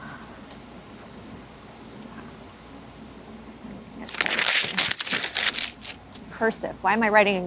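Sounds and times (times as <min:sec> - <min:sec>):
sheet of paper being crumpled: 0:04.0 - 0:06.1
speech: 0:06.4 - 0:07.4.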